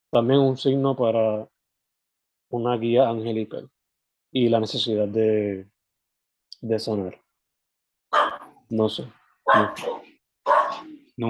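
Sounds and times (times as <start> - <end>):
speech: 0.1 - 1.5, 2.5 - 5.7, 6.6 - 7.2, 8.7 - 10.0
neighbor's dogs barking: 8.1 - 8.5, 9.5 - 10.9.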